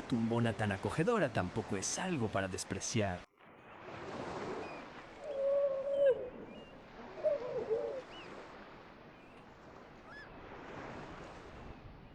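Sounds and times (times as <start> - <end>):
rushing wind or surf: 0.0 - 12.1
speech: 0.1 - 3.3
young and older grey seals howling: 4.6 - 8.5.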